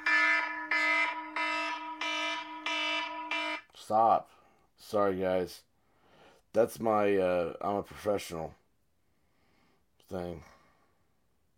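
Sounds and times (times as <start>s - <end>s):
phone alarm going off in pocket: 0.0s - 3.7s
speech: 3.9s - 5.7s, 6.5s - 8.6s, 10.1s - 10.6s.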